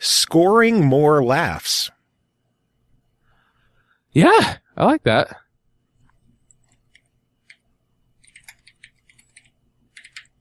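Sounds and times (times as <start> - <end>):
speech: 0.3 - 1.8, 4.2 - 5.4
mechanical keyboard typing: 8.2 - 10.3.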